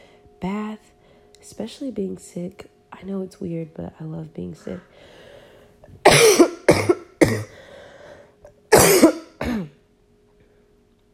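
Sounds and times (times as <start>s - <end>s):
speech: 0.4s - 5.2s
harsh coughing with raspy throat-clearing: 6.0s - 7.6s, 8.7s - 9.8s.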